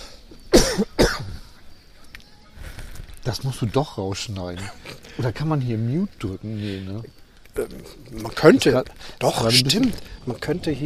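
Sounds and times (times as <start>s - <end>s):
person coughing: 0.5s - 1.4s
faint rustle: 1.2s - 10.8s
speech: 3.3s - 10.8s.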